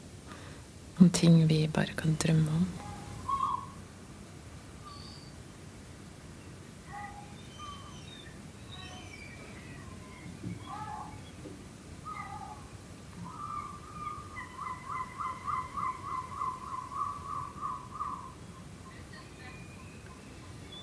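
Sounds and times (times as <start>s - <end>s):
speech: 1.0s - 2.8s
gulls calling at night with mewing cries and yelping notes: 2.7s - 4.0s, 4.8s - 5.4s, 6.3s - 20.8s.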